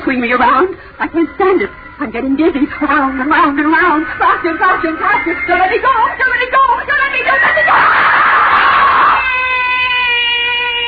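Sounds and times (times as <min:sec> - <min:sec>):
speech: 0:00.1 - 0:06.6, 0:07.2 - 0:08.0
woman screaming: 0:06.0 - 0:10.8.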